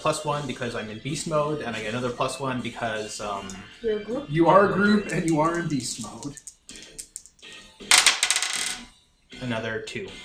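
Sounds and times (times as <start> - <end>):
speech: 0.0 - 7.0, 9.4 - 10.2
dice rolling on a hard flat tabletop: 5.1 - 8.9.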